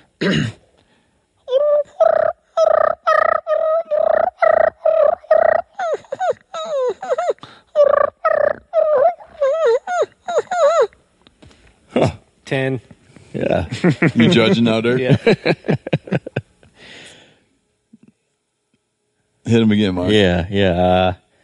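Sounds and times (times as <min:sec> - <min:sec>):
speech: 0:00.2 - 0:00.6, 0:12.5 - 0:16.0, 0:19.5 - 0:21.2
turkey fighting purr made with a call imitating two gobblers: 0:01.5 - 0:10.9
laughter: 0:13.7 - 0:16.5.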